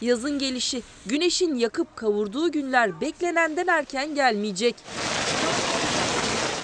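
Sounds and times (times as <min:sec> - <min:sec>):
speech: 0:00.0 - 0:05.7
steady rain pouring: 0:04.8 - 0:06.6.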